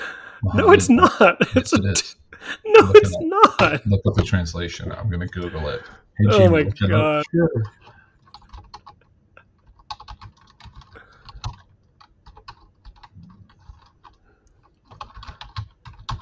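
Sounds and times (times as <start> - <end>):
laughter: 0.0 - 3.8, 5.5 - 7.2
speech: 0.4 - 8.0
knuckles banging on a computer keyboard: 8.3 - 16.2.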